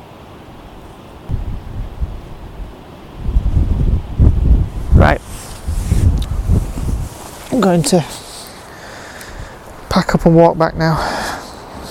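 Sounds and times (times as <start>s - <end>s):
strong wind buffeting the microphone in low rumbling gusts: 1.3s - 8.1s, 9.3s - 9.7s
speech: 7.6s - 8.2s, 10.2s - 11.1s.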